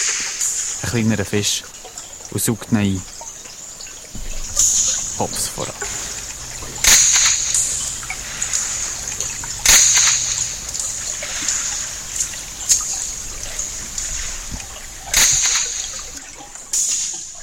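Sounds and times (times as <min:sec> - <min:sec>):
sharp whip-like underwater cracks of a zander stunning a small fish: 0:00.0 - 0:17.4
steady hissing background: 0:00.0 - 0:17.4
speech: 0:00.8 - 0:03.2, 0:05.2 - 0:05.8.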